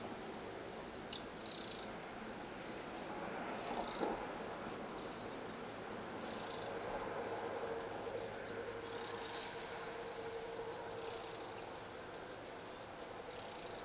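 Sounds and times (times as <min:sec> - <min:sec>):
Eurasian wren Troglodytes troglodytes calling with dry rattling churrs: 0:00.3 - 0:05.4, 0:06.2 - 0:09.6, 0:10.4 - 0:13.8.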